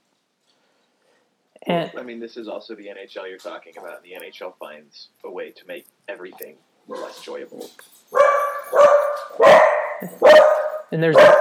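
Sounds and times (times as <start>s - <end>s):
speech: 1.6s - 8.4s, 9.4s - 11.3s
dogs barking: 6.9s - 11.3s.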